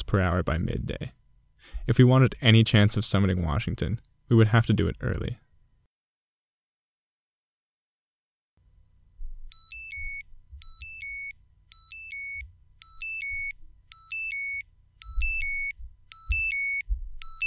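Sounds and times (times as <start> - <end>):
speech: 0.1 - 5.4
electronic alarm beeping in the morning: 9.5 - 17.4.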